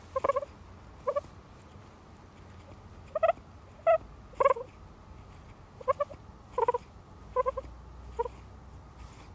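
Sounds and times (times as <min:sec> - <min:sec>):
guinea pig purring: 0:00.0 - 0:01.3, 0:02.6 - 0:04.8, 0:05.8 - 0:08.5.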